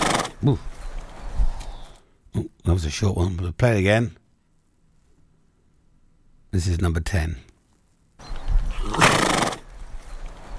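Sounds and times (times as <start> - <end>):
horse snorting through the nostrils: 0.0 - 0.6, 8.7 - 9.7
speech: 0.4 - 0.7, 2.7 - 4.2, 6.5 - 7.5.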